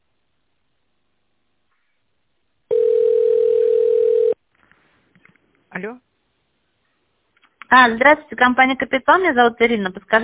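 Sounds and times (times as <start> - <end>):
telephone ringback tone during call transfer to operator: 2.7 - 4.4
speech: 5.8 - 6.1, 7.7 - 10.2.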